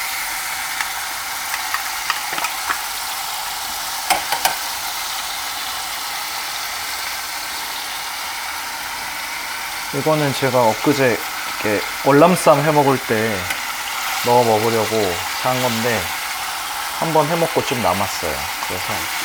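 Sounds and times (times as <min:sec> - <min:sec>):
vegetables sizzling as they are stir-fried in a pan: 0:00.0 - 0:19.2
utensil clicking against a pan: 0:00.7 - 0:03.0, 0:04.1 - 0:04.7
speech: 0:09.9 - 0:13.6, 0:14.2 - 0:16.2, 0:17.0 - 0:19.2.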